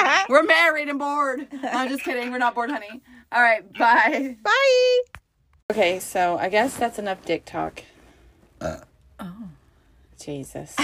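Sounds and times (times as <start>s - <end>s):
speech: 0.3s - 7.9s, 8.6s - 9.5s, 10.2s - 10.8s
person burping: 8.6s - 9.6s.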